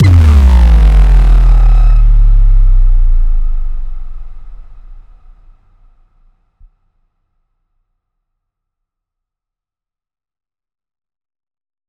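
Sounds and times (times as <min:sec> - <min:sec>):
screech drop: 0:00.0 - 0:05.1.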